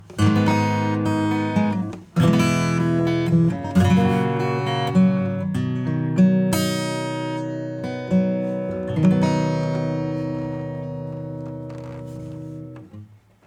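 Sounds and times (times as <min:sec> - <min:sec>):
acoustic guitar: 0:00.0 - 0:13.4.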